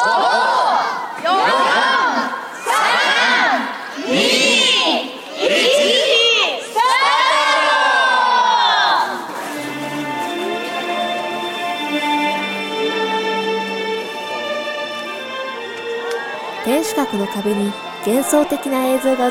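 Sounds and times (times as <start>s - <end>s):
crowd cheering and shouting at an outdoor nighttime event: 0.0s - 9.3s
steady music: 9.6s - 19.2s
speech: 17.1s - 19.2s.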